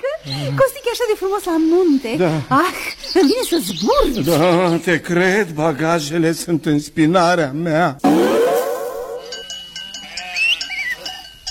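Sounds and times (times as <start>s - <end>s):
speech: 0.2s - 8.1s
bells clanking in a shepherd's flock in the mountains: 8.0s - 11.4s
sheep bleating in a mountain flock: 10.0s - 11.0s.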